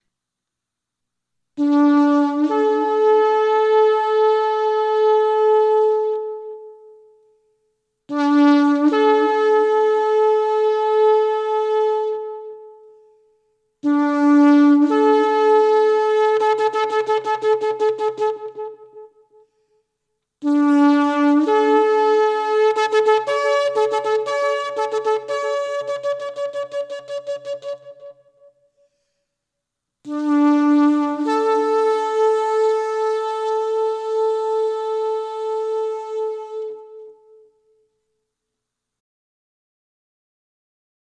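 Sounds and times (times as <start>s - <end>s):
shofar: 1.6s - 7.3s, 8.1s - 13.2s, 13.8s - 19.4s, 20.4s - 28.7s, 30.1s - 37.9s.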